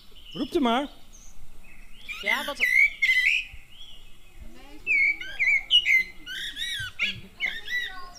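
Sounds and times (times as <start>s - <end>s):
Eurasian blackbird singing a rich fluting song: 0.0s - 8.1s
speech: 0.3s - 1.0s, 2.2s - 2.8s.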